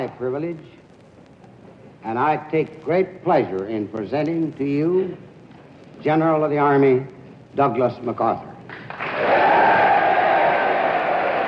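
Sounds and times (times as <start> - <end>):
speech: 0.0 - 0.8, 2.0 - 5.3, 6.0 - 8.5
applause from Congress members and guests: 8.7 - 11.4
Congress members and guests standing and cheering: 8.9 - 11.4.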